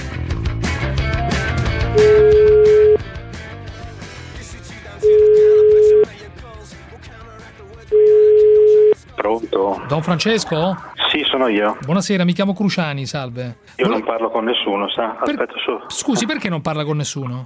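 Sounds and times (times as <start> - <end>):
music: 0.0 - 15.0
telephone line tone beeps as a call is placed: 2.0 - 3.0, 5.0 - 6.1, 7.9 - 9.0
speech: 10.0 - 17.4.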